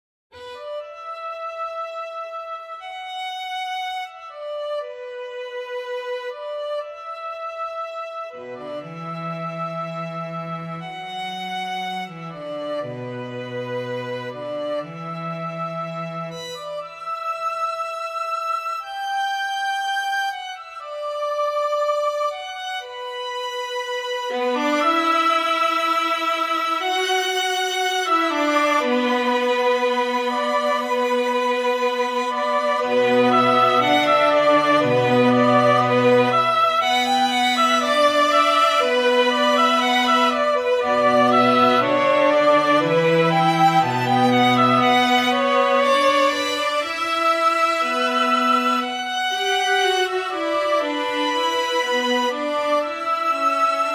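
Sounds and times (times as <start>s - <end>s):
string quartet playing in B minor: 0.4s - 53.9s.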